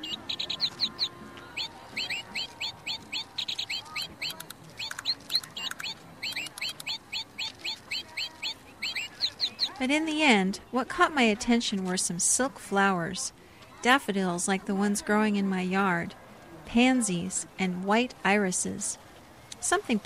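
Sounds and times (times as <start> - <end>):
battery-powered toy bird chirping: 0.0 - 9.8
speech: 9.8 - 19.0, 19.7 - 20.0.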